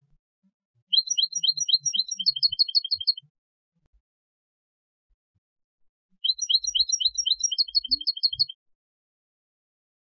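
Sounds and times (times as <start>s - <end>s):
European goldfinch twittering: 0.9s - 3.2s, 6.2s - 8.6s.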